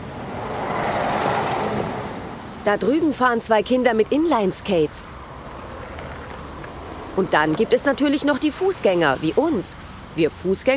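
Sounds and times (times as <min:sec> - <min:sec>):
bus engine drone: 0:00.0 - 0:10.7
bus road noise: 0:00.0 - 0:10.7
speech: 0:02.6 - 0:05.2, 0:07.2 - 0:10.7.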